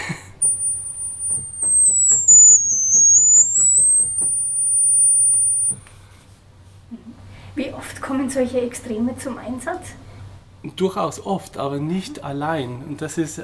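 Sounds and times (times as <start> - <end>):
highest-pitched organ pipe tone, very shrill and piercing: 0.4 - 5.8
speech: 8.3 - 10.0, 10.6 - 13.4.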